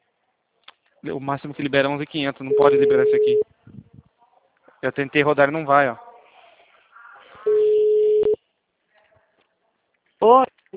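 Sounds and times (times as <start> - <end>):
speech: 1.0 - 3.8, 4.8 - 6.0, 10.2 - 10.7
telephone busy tone after a dropped call: 2.5 - 3.4, 7.5 - 8.4.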